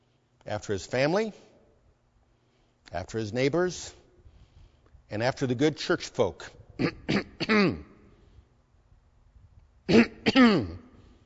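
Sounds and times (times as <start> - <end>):
speech: 0.5 - 1.5, 2.9 - 4.0, 5.1 - 7.9, 9.9 - 10.8
throat clearing: 6.8 - 8.0, 9.9 - 11.0.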